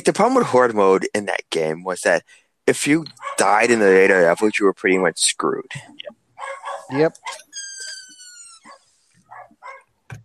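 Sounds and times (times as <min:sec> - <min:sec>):
speech: 0:00.0 - 0:06.2, 0:06.9 - 0:07.4
dog barking: 0:03.2 - 0:03.5, 0:06.4 - 0:07.4, 0:08.7 - 0:09.9.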